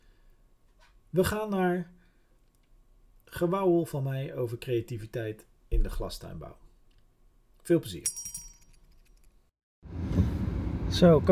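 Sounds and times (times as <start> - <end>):
speech: 1.1 - 2.0, 3.3 - 6.6, 7.6 - 8.4, 10.9 - 11.3
keys jingling and clinking: 8.1 - 9.4.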